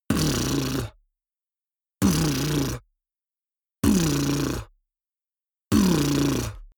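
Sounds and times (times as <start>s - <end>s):
beatbox bass drum: 0.1s - 1.0s, 2.0s - 2.8s, 3.8s - 4.7s, 5.7s - 6.7s.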